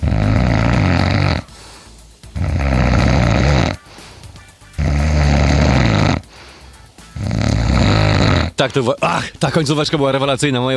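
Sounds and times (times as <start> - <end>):
loud rasping snores: 0.0 - 3.9, 4.7 - 6.4, 7.1 - 8.6
speech: 8.6 - 10.7.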